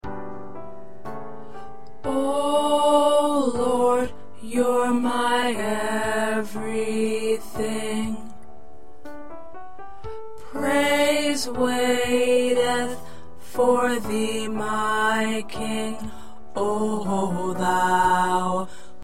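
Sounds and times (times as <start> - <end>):
tenor singing: 2.0 - 8.4, 10.4 - 18.7.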